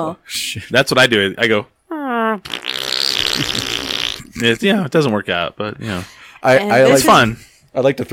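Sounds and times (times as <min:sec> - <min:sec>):
speech: 0:00.0 - 0:01.7, 0:02.3 - 0:02.8, 0:03.4 - 0:08.1
person blowing a loud sputtering raspberry imitating a fart: 0:01.9 - 0:04.6.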